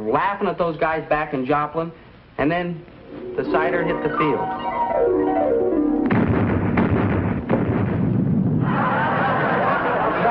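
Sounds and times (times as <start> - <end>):
speech: 0.0 - 5.6
fuel drum exploding during an attack on a base: 6.0 - 9.2
laughter: 8.6 - 10.2.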